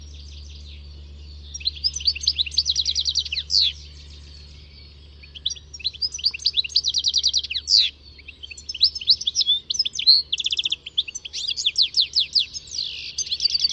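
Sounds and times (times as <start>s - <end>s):
bird song buzzy trill ending in a sharp downslurred note: 0.0s - 13.7s
low steady hum: 0.0s - 13.7s.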